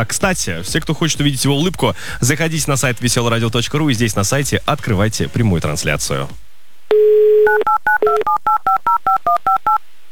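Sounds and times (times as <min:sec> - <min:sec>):
speech: 0:00.0 - 0:06.4, 0:07.5 - 0:09.8
phone dial tone: 0:06.9 - 0:09.8.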